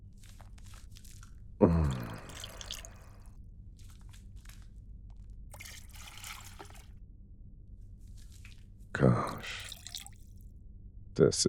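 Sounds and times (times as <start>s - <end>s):
water trickling while washing someone with body wash: 1.7s - 3.3s, 5.5s - 6.9s, 9.2s - 10.3s
speech: 11.2s - 11.4s.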